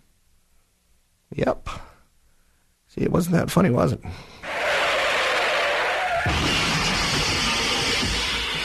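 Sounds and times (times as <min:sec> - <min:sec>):
speech: 0:01.3 - 0:01.8, 0:02.9 - 0:04.3, 0:06.3 - 0:06.7
car tires screeching: 0:04.5 - 0:08.6.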